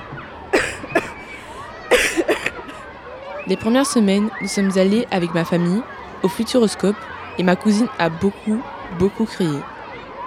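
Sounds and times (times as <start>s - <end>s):
laughter: 0.0s - 2.8s, 3.4s - 9.6s
faint noise: 0.0s - 10.2s
slightly ill person coughing harshly: 0.6s - 2.8s
speech: 3.5s - 9.7s.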